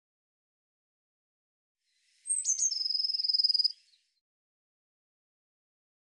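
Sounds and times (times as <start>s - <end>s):
Eurasian blue tit calling: 2.3s - 3.9s.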